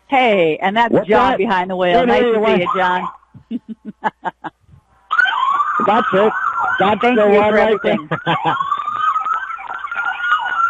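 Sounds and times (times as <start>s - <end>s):
speech: 0.1s - 4.6s, 5.8s - 8.7s
laughter: 3.4s - 4.7s, 5.8s - 9.0s
siren of a postal ambulance in a back-to-school parade: 5.1s - 10.6s.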